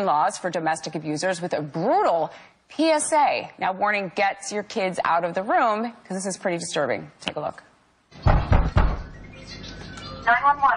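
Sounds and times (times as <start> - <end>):
speech: 0.0 - 8.3, 10.3 - 10.7
man banging on a house door trying to break in: 8.2 - 9.2.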